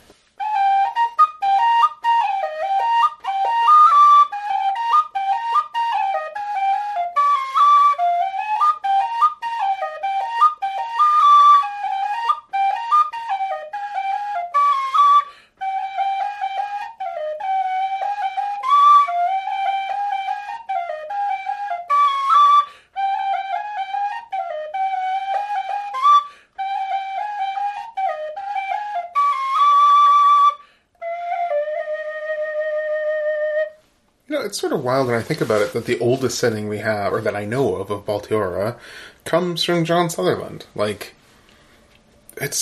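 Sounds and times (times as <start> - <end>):
tin whistle playing a lilting traditional melody: 0.4 - 33.9
speech: 34.5 - 41.2.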